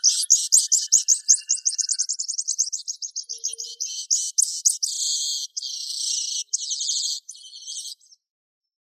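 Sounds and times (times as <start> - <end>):
bird song with rapid high trill and buzzy chattering phrases: 0.0 - 8.3.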